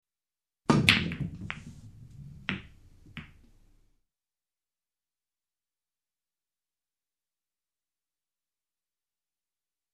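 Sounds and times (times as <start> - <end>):
billiard balls breaking: 0.7 - 3.8.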